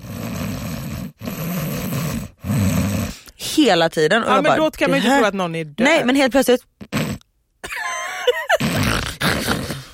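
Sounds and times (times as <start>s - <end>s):
voice imitating a taxi driver's heavy labored breathing: 0.0s - 3.4s, 8.6s - 9.9s
speech: 3.6s - 6.9s.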